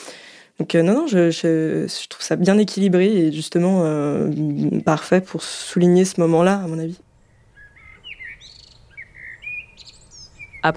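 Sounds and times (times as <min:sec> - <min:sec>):
speech: 0:00.6 - 0:07.0
birds singing outdoors: 0:04.0 - 0:10.7
low rumble of ambient noise: 0:04.1 - 0:10.7.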